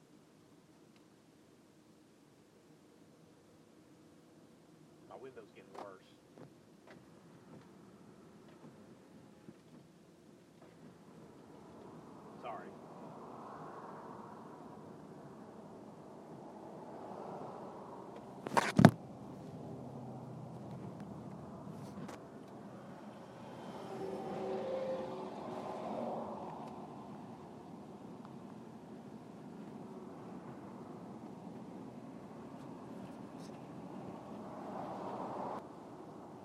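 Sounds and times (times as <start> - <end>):
car driving to work in traffic: 4.9 - 36.4
speech: 5.2 - 6.1.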